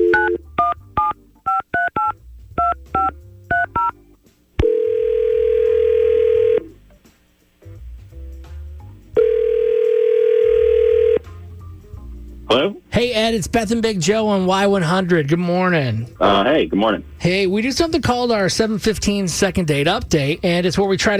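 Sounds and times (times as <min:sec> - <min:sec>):
phone ringback tones: 0:00.0 - 0:04.0, 0:04.6 - 0:06.7, 0:09.2 - 0:11.3
phone touch-tone dialing beeps: 0:00.0 - 0:04.0
speech: 0:13.2 - 0:21.1.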